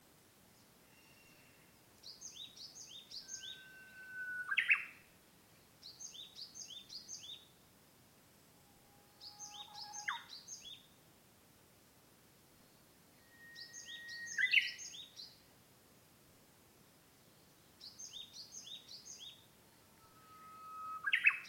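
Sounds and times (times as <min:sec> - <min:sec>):
Japanese bush warbler singing: 0:01.0 - 0:05.0, 0:05.6 - 0:07.5, 0:09.2 - 0:10.9, 0:12.6 - 0:15.4, 0:17.3 - 0:19.5, 0:21.0 - 0:21.4.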